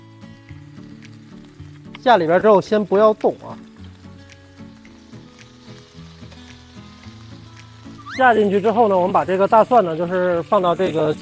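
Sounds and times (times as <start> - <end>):
fillet steak searing in a hot smoking pan: 0.0 - 11.2
speech: 2.0 - 3.7, 8.2 - 11.2.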